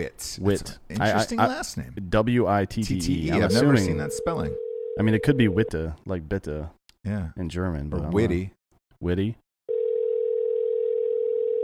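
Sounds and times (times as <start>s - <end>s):
speech: 0.0s - 9.4s
outgoing phone call ringing tone through an earpiece: 3.3s - 5.7s, 9.7s - 11.6s.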